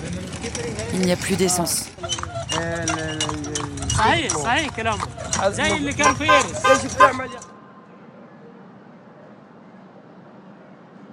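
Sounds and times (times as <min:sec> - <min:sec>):
speech: 0:00.5 - 0:07.5
clip-clop of hooves from a horse-drawn cart on a road: 0:02.1 - 0:07.1.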